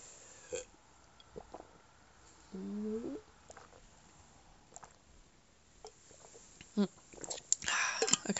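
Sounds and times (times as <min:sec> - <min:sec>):
sipping and gulping water during a water break: 0:00.5 - 0:01.9, 0:02.5 - 0:03.9, 0:04.7 - 0:05.1, 0:05.8 - 0:08.3.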